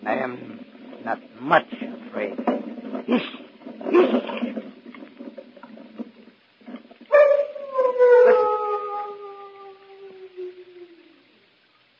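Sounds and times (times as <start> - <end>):
speech: 0.1 - 2.0
large dog howling long and loud: 7.1 - 11.3.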